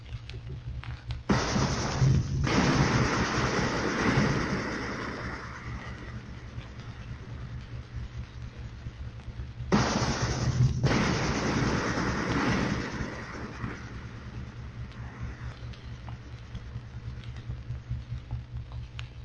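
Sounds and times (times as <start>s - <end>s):
steady low hum: 0.0s - 19.2s
underwater depth charge explosions picked up on a hydrophone: 1.3s - 7.6s, 9.7s - 15.6s.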